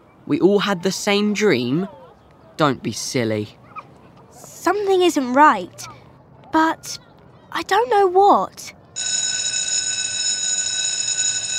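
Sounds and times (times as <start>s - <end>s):
speech: 0.3s - 2.0s, 2.6s - 3.6s, 4.4s - 7.0s, 7.6s - 9.1s
electric school bell ringing: 9.0s - 11.5s.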